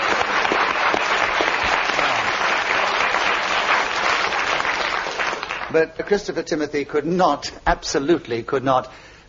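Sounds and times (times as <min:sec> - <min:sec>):
studio audience applause: 0:00.0 - 0:05.8
speech: 0:05.7 - 0:09.1.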